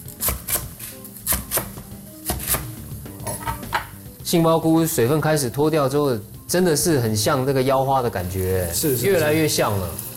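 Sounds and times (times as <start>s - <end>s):
knife chopping napa cabbage into slices: 0.2s - 2.7s
speech: 4.3s - 10.1s.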